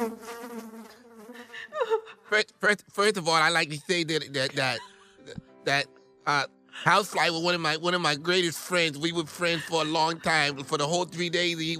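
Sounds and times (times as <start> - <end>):
human voice imitating a mosquito buzz: 0.0 - 1.8
laughter: 1.4 - 2.5, 3.4 - 5.8, 6.8 - 7.3, 8.6 - 11.1
speech: 2.4 - 11.7.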